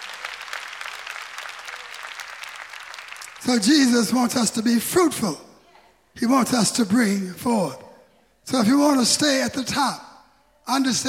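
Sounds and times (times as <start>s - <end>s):
crowd applauding: 0.0s - 4.1s
speech: 3.4s - 5.5s, 6.2s - 7.8s, 8.5s - 10.1s, 10.7s - 11.0s.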